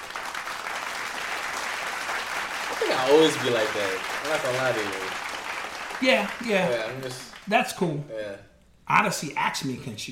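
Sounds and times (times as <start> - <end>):
applause of many hands clapping: 0.0 - 7.5
speech: 2.9 - 5.2, 6.0 - 10.0.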